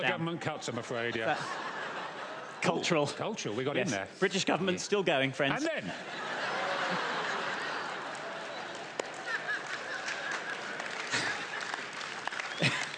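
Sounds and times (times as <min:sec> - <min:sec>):
speech: 0:00.0 - 0:01.8, 0:02.6 - 0:06.3, 0:06.9 - 0:07.1
laughter: 0:01.1 - 0:03.2, 0:05.7 - 0:12.9
audience applause: 0:06.4 - 0:12.9.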